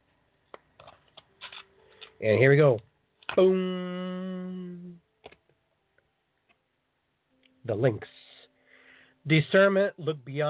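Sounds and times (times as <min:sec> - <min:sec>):
deck of oracle cards being shuffled: 0:00.8 - 0:02.2
speech: 0:02.2 - 0:04.3, 0:07.7 - 0:08.2, 0:09.2 - 0:10.4.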